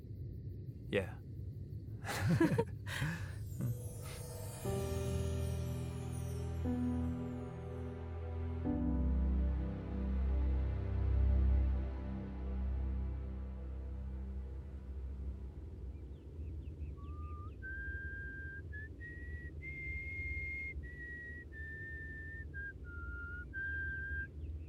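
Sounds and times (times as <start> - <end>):
steady low rumbling background: 0.0 - 24.6
speech: 0.9 - 1.2, 2.0 - 3.7
laughter: 2.1 - 3.7
person whistling a slow simple tune: 17.0 - 24.3.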